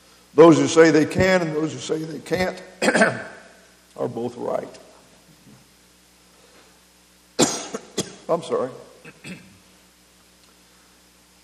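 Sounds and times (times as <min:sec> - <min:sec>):
speech: 0:00.4 - 0:03.3, 0:04.0 - 0:04.8, 0:07.7 - 0:09.5
single loud cough: 0:02.8 - 0:03.3, 0:07.4 - 0:08.3, 0:09.0 - 0:09.6.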